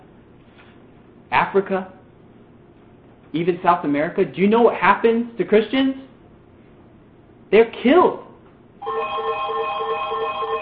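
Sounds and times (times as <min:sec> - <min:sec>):
speech: 0:01.3 - 0:02.0, 0:03.3 - 0:06.0, 0:07.5 - 0:08.2
telephone ringing with electronic trilling tone: 0:08.8 - 0:10.6.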